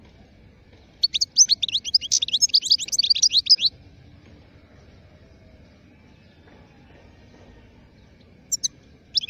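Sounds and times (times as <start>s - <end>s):
wild European goldfinch twittering song: 0.8s - 3.7s, 8.0s - 9.2s
European goldfinch short high chirps: 1.0s - 3.7s, 8.5s - 9.2s.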